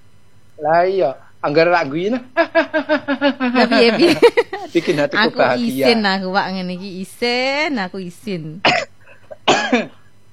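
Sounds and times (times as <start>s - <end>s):
speech: 0.6s - 8.9s, 9.6s - 10.0s
laughter: 2.3s - 6.0s
cough: 8.6s - 10.0s.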